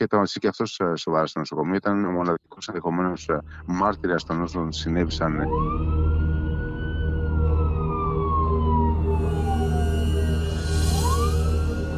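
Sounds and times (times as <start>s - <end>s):
speech: 0.0s - 6.0s
police sirens wailing: 3.4s - 11.9s.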